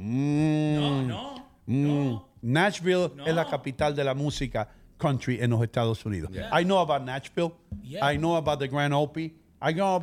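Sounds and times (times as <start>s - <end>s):
person imitating a cow moo: 0.0s - 2.3s
vocal sound: 0.0s - 2.3s
speech: 2.5s - 10.0s.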